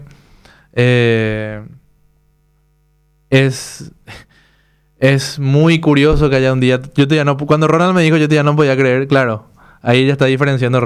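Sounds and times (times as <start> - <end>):
ceiling fan humming: 0.0 - 10.8
speech: 0.7 - 1.8, 3.3 - 4.2, 5.0 - 10.8.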